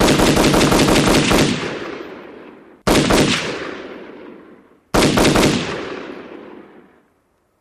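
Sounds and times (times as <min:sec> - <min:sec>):
AR15 machine gun firing: 0:00.0 - 0:02.0, 0:02.9 - 0:04.2, 0:04.9 - 0:06.6.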